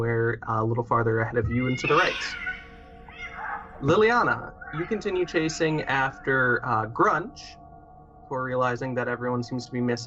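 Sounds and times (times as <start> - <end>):
speech: 0.0 - 2.4, 3.8 - 7.6, 8.3 - 10.0
man's shrill yowls and screeches imitating cats fighting: 1.4 - 2.4.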